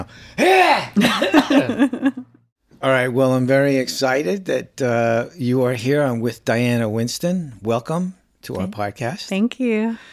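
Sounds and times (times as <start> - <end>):
laughter: 0.0 - 2.4
speech: 0.0 - 10.1
person clearing throat: 0.4 - 2.1.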